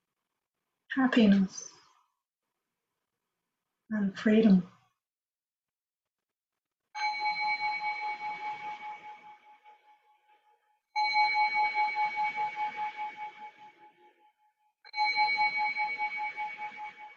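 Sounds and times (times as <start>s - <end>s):
speech: 1.0s - 1.7s, 3.9s - 4.7s
meditation bell ringing: 7.0s - 10.3s, 10.9s - 17.1s.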